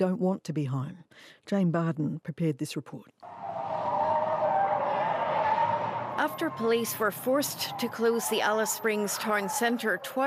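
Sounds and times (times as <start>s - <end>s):
speech: 0.0s - 3.5s, 6.2s - 10.2s
car tires skidding during a police chase in Alice Springs: 3.3s - 10.2s
road noise: 3.3s - 10.2s.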